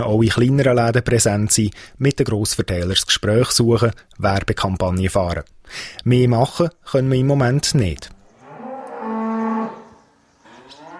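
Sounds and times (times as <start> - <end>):
speech: 0.0 - 8.2
Angus cattle mooing in a barn stall: 8.3 - 10.9.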